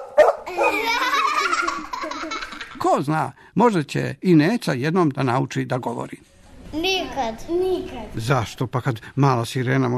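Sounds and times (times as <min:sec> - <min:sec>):
dog barking: 0:00.0 - 0:00.8
speech: 0:00.5 - 0:01.2, 0:02.2 - 0:09.9
laughter: 0:00.5 - 0:02.8.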